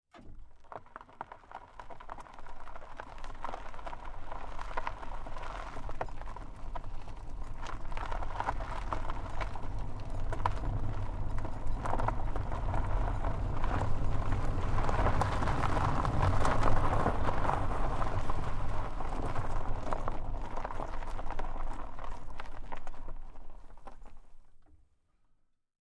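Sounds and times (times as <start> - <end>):
car tires rolling slowly on gravel dirt road, recorded onboard: 0.1 - 24.7.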